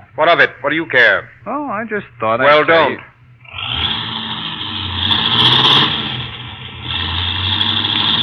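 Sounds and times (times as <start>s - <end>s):
speech: 0.2s - 3.1s
car engine roaring as the car speeds away: 3.4s - 8.2s.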